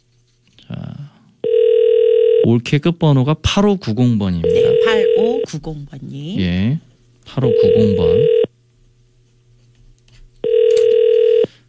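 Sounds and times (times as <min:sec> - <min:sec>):
telephone ringback tone of an outgoing call: 0:01.4 - 0:02.4, 0:04.4 - 0:05.4, 0:07.4 - 0:08.5, 0:10.4 - 0:11.5
speech: 0:02.5 - 0:08.4.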